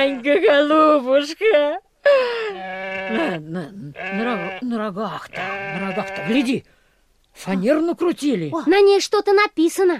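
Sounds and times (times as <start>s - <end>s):
goat bleating: 0.0s - 0.6s, 2.6s - 6.6s
speech: 0.0s - 6.8s, 7.4s - 9.9s.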